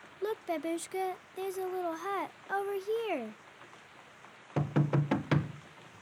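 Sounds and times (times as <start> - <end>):
speech: 0.5 - 3.4
knocks on the wooden door of a small visitors' hut at a prison camp in rain: 4.6 - 5.6.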